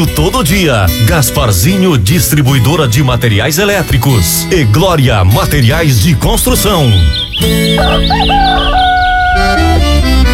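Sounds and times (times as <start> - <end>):
speech: 0.0 - 8.9
upbeat music: 0.0 - 10.3
chirpy bird-like warbles: 6.4 - 10.0
rooster crowing: 7.7 - 9.9.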